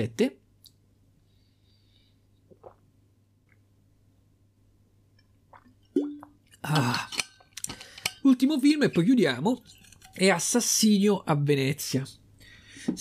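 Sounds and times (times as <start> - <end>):
speech: 0.0 - 0.4, 6.6 - 7.2, 8.2 - 12.2
person drinking water with sips and gulping: 2.4 - 2.9, 5.5 - 8.0.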